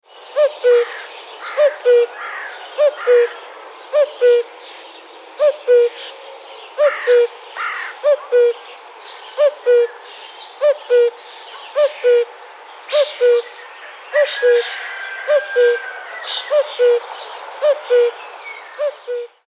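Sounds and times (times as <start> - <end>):
Cuculus canorus: 0.3 - 4.6, 5.4 - 8.8, 9.4 - 19.4.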